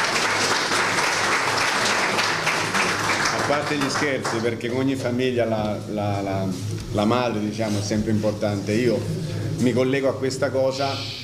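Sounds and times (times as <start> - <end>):
crowd clapping: 0.0 - 5.0
speech: 3.5 - 11.2.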